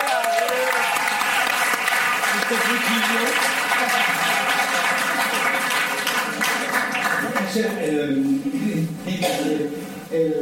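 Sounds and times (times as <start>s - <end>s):
crowd clapping: 0.0s - 7.8s
speech: 2.5s - 4.4s, 7.6s - 10.4s.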